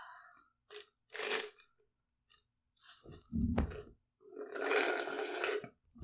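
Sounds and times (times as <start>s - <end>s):
wet slurping while eating: 0.7s - 1.6s, 2.8s - 6.0s.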